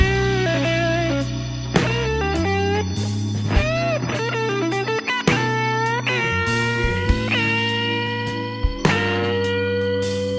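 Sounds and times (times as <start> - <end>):
distorted electric guitar riff with bending notes: 0.0 - 10.3
steady low bass line: 0.0 - 10.3.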